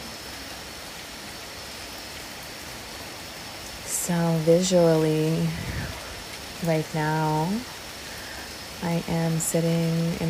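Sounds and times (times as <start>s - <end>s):
steady dense rain falling: 0.0s - 10.2s
speech: 4.1s - 5.8s, 6.6s - 7.8s, 8.8s - 10.2s.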